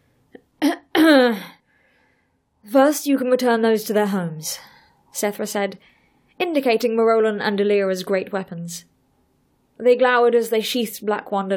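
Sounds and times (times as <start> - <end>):
woman clearing her throat: 0.6 - 1.6
speech: 2.8 - 8.9, 9.8 - 11.5.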